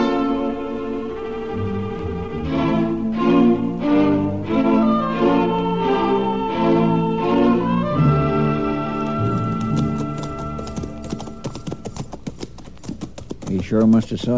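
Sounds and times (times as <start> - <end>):
sustained orchestral music: 0.0 - 11.5
horses' hooves clip-clopping: 8.8 - 14.3
speech: 13.7 - 14.3.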